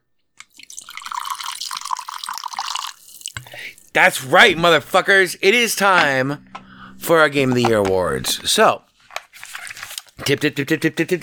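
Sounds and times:
whiskey being poured into a glass: 0:00.5 - 0:03.6
speech: 0:03.9 - 0:06.5, 0:07.1 - 0:08.8, 0:10.3 - 0:11.2.

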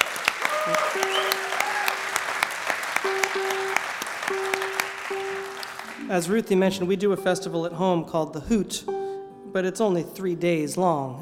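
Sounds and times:
crowd applauding: 0:00.0 - 0:06.6
faint whistles: 0:00.8 - 0:01.6
speech: 0:06.1 - 0:11.1.

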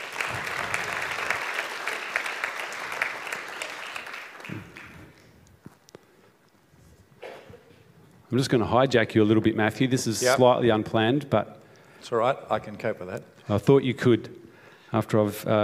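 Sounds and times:
sizeable audience applause welcoming a speaker at a church: 0:00.0 - 0:05.4
speech: 0:08.3 - 0:15.6.

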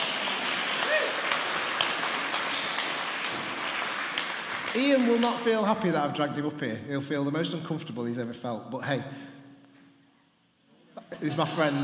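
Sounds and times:
audience applauding: 0:00.0 - 0:05.8
speech: 0:04.7 - 0:09.3, 0:11.2 - 0:11.8.

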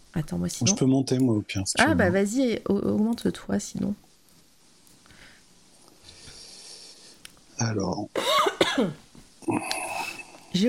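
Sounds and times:
speech: 0:00.1 - 0:04.1, 0:07.6 - 0:09.8
harsh throaty coughs: 0:08.2 - 0:09.0
raspy throat-clearing: 0:08.2 - 0:10.3.

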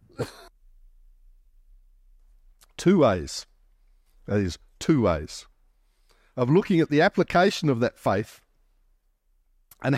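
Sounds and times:
person coughing into the microphone: 0:00.0 - 0:00.5
faint low hum: 0:00.0 - 0:09.9
speech: 0:00.2 - 0:00.4, 0:02.8 - 0:03.5, 0:04.3 - 0:05.5, 0:06.4 - 0:08.4, 0:09.8 - 0:09.9.

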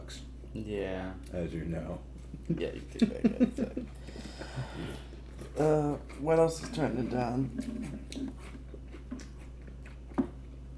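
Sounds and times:
speech: 0:00.5 - 0:08.6
chewing crunchy cereal: 0:04.0 - 0:10.7.

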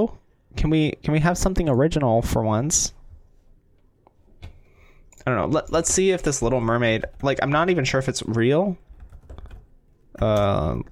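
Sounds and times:
speech: 0:00.0 - 0:03.0, 0:05.2 - 0:08.8, 0:10.2 - 0:10.9
typing on a computer keyboard: 0:08.8 - 0:10.5.

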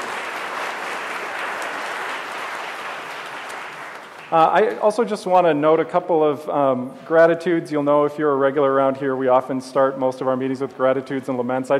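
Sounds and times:
audience applause for a choir: 0:00.0 - 0:04.8
speech: 0:04.3 - 0:11.7.

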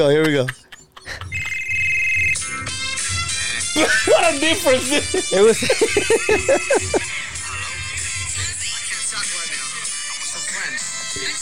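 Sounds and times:
speech: 0:00.0 - 0:01.3, 0:03.8 - 0:07.1
laughter: 0:00.0 - 0:01.6, 0:03.8 - 0:07.1
phone ringtone with synth notes over a thumping low beat: 0:01.0 - 0:03.5.

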